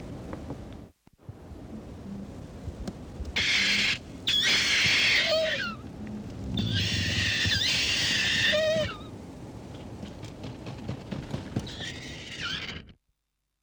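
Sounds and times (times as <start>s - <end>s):
kakapo calling with raspy screech: 3.4s - 5.8s, 6.6s - 9.1s, 11.6s - 13.0s.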